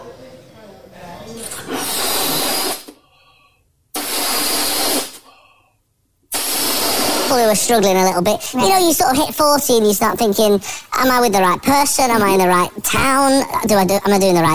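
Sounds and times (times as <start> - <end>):
balloons being blown up: 1.5 - 3.0, 3.9 - 5.4, 6.3 - 7.5
speech: 7.3 - 14.5.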